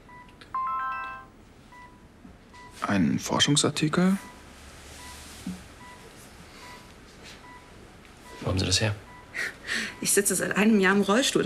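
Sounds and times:
smartphone electronic chime opening a file on voice command: 0.6 - 1.3
speech: 2.9 - 4.3, 8.7 - 11.4.

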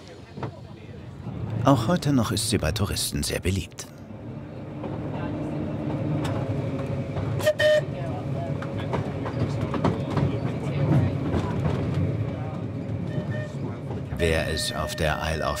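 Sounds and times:
old tram on historic tramway rumbling and clattering along rails: 0.0 - 15.5
speech: 1.6 - 3.9, 14.6 - 15.5
old tram horn toot: 4.1 - 9.4, 13.0 - 15.5.

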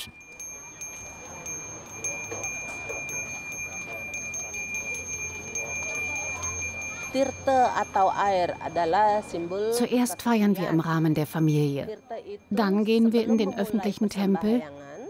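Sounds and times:
small hand bell rung by a priest during a religious celebration: 0.0 - 10.8
murmur of voices: 0.0 - 15.0
speech: 7.1 - 14.9.

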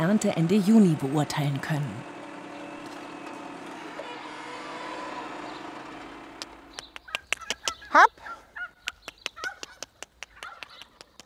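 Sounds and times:
speech: 0.0 - 2.1
turkeys on a farm clucking and putting: 6.4 - 11.1.

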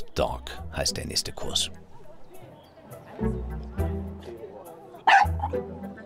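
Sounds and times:
speech: 0.2 - 1.9, 3.2 - 3.7
small Pekingese mix dog barking in sharp yappy bursts: 5.0 - 5.6.

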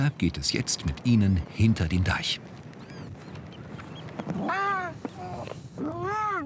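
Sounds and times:
speech: 0.0 - 2.6, 5.8 - 6.4
faint noise: 0.0 - 6.4
young harbour seals crying in a plastic bucket in wet salt marshes: 2.8 - 6.4.

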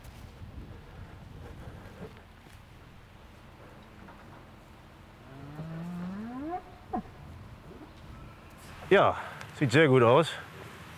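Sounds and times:
steady outdoor wind on a farm: 0.0 - 10.9
cow mooing on a farm: 5.2 - 7.2
speech: 8.9 - 10.5.

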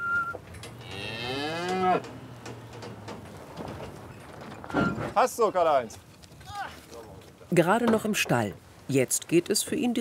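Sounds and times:
breeding bull lowing in a livestock trailer: 0.8 - 2.7
speech: 1.9 - 2.2, 5.2 - 6.1, 7.5 - 9.9.

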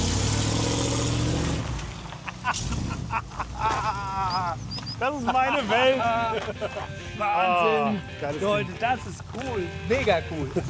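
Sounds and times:
engine rumble of a vehicle carrying a two-tonne camper cabin driving off: 0.0 - 5.4
laughter: 2.2 - 8.0, 10.4 - 10.6
speech: 2.5 - 10.6.

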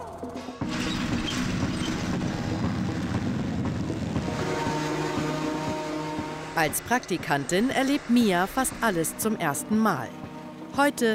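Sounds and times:
speech: 0.2 - 0.8, 6.6 - 10.2, 10.8 - 11.1
heavy diesel tractor engine rumbling while driving: 0.6 - 9.1.

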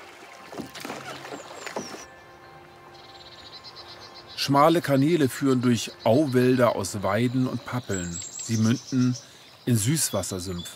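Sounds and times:
small boat paddle strokes splashing in a wetland: 0.0 - 2.2
birds chirping in a wetland: 0.3 - 10.7
speech: 4.4 - 10.7.

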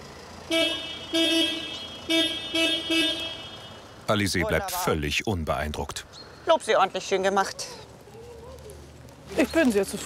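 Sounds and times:
low rumble of traffic or an idling engine: 0.0 - 10.0
speech: 0.5 - 3.2, 4.1 - 7.8, 9.3 - 10.0
car horn honking during a dog's calmness training test: 0.5 - 4.0.

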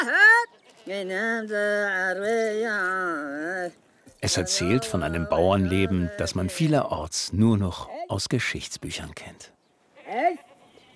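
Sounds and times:
goat bleating while grazing on an island: 0.0 - 6.7, 9.9 - 10.9
speech: 0.9 - 10.4.

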